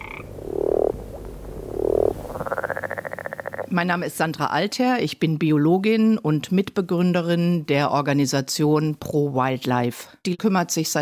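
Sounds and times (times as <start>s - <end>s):
frogs or toads croaking: 0.0s - 3.8s
speech: 0.2s - 0.4s, 3.7s - 11.0s.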